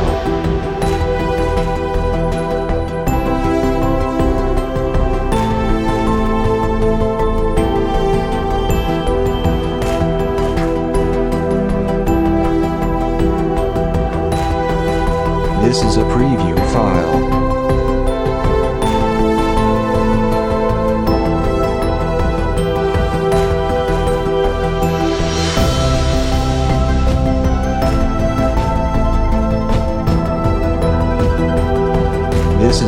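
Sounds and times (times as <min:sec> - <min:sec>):
layered synthesizer pads: 0:00.0 - 0:32.8.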